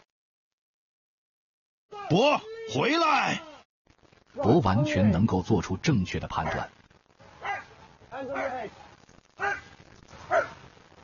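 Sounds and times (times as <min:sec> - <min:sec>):
noise: 0:01.9 - 0:11.0
speech: 0:02.0 - 0:03.5, 0:04.4 - 0:06.8, 0:08.2 - 0:09.6
police dog barking during bite-work training: 0:06.4 - 0:06.7, 0:07.4 - 0:08.7, 0:09.4 - 0:10.6.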